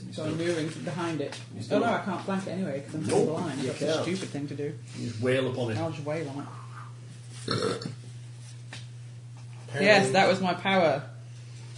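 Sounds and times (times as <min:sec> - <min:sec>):
quiet hum: 0:00.0 - 0:11.7
speech: 0:00.2 - 0:06.6, 0:07.4 - 0:08.0, 0:09.7 - 0:11.1
short burp with a low rumbling tone: 0:07.4 - 0:08.0.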